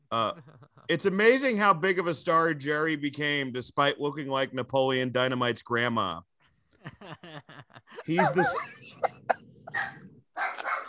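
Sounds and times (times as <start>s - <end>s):
laughter: 0.1s - 1.0s, 6.8s - 9.8s
speech: 0.1s - 8.8s
dogs barking: 8.2s - 10.8s.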